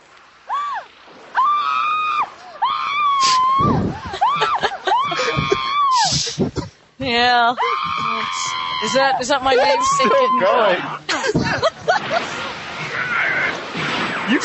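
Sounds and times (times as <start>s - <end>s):
woman screaming in long high wavering screams: 0.5s - 6.2s, 7.6s - 11.0s
speech: 3.6s - 4.2s, 6.4s - 12.4s
laughter: 3.8s - 6.7s, 7.9s - 13.4s
woman gasping: 5.1s - 6.7s.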